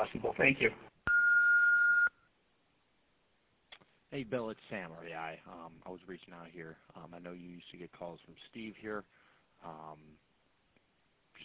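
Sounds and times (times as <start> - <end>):
speech: 0.0 - 0.9, 4.1 - 10.3
answering machine beep: 1.1 - 2.1.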